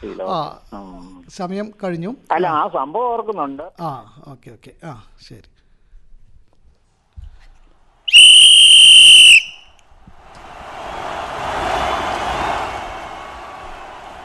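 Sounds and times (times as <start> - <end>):
speech: 0.0 - 5.6
referee's final whistle blast at a football match: 8.1 - 9.7
crowd noise at a football match: 8.1 - 14.2.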